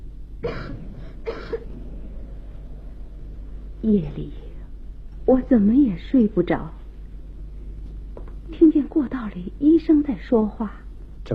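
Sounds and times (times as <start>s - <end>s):
speech: 0.4s - 0.8s, 3.8s - 4.4s, 5.3s - 6.8s, 8.6s - 11.3s
woman coughing: 0.4s - 1.8s.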